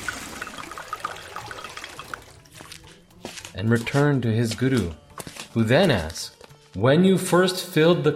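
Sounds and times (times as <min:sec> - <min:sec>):
water being poured into a river: 0:00.0 - 0:02.9
speech: 0:03.6 - 0:08.1.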